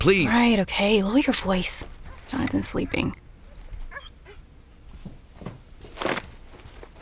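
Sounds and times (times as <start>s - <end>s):
speech: 0.0s - 3.2s
hurt dog yelping in a living room: 2.0s - 4.4s
hurt dog with open wounds whimpering in a living room: 2.8s - 4.4s.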